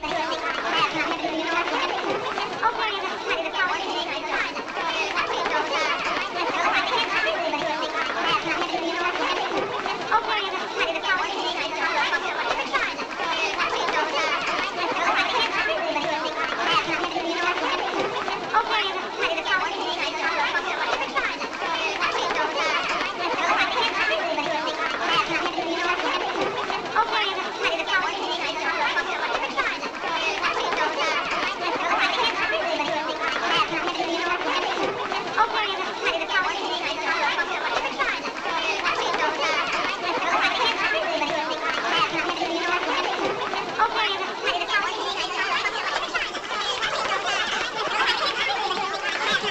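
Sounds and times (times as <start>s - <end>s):
high-pitched vintage cartoon comedy crowd walla: 0.0s - 49.4s
laughter: 0.0s - 49.4s.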